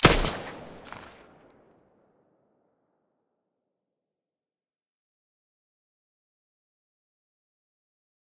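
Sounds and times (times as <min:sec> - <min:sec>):
silenced P90 gunshots: 0:00.0 - 0:01.5.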